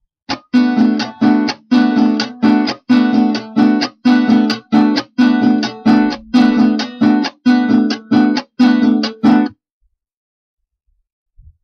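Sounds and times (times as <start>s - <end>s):
merengue music: 0.3s - 9.5s.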